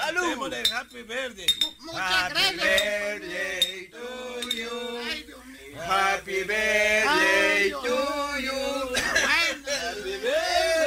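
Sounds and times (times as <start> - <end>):
speech: 0.2 - 9.3
glasses clinking in a toast: 0.6 - 1.8, 3.6 - 4.8
overlapping voices cheering and singing together: 1.8 - 10.8.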